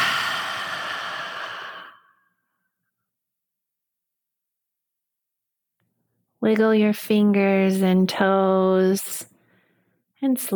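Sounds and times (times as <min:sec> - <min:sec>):
deep exhale after inhaling through the nose: 0:00.0 - 0:02.4
speech: 0:06.4 - 0:09.3, 0:10.2 - 0:10.5.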